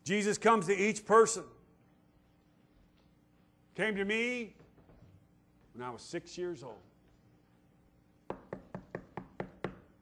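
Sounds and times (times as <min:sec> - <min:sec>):
speech: 0:00.0 - 0:01.6, 0:03.8 - 0:04.6, 0:05.8 - 0:06.9
quick firm knocking on a door: 0:08.3 - 0:09.9.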